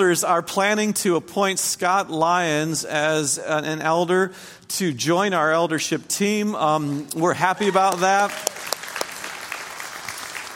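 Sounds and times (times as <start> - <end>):
speech: 0.0 - 8.7
church audience applause: 7.6 - 10.5.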